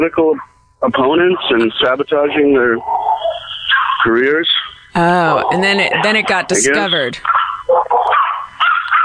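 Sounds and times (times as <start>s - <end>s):
speech: 0.0s - 7.4s
several dogs barking and yipping: 2.8s - 4.8s, 7.2s - 9.0s.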